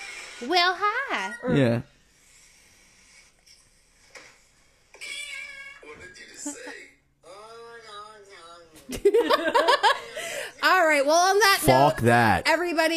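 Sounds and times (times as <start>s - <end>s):
speech: 0.4s - 1.9s, 8.9s - 12.9s
orange tabby cat meowing loudly: 5.0s - 5.9s
laughter: 6.3s - 6.8s, 8.9s - 10.5s.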